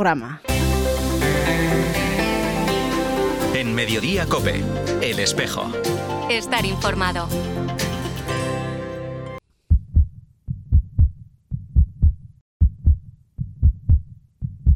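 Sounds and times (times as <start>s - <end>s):
speech: 0.0s - 0.6s, 1.2s - 2.0s, 3.5s - 7.8s
music: 0.4s - 9.4s
heartbeat: 9.7s - 14.7s.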